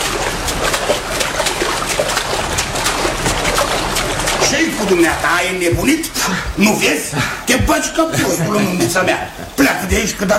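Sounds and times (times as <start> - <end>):
water splashing as someone swims: 0.0 - 10.3
speech: 4.8 - 10.3
laughter: 6.0 - 10.2.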